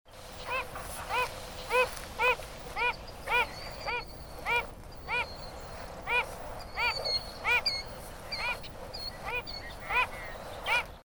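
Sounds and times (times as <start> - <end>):
Wilson's Phalarope Phalaropus tricolor calling: 0.3 - 11.0.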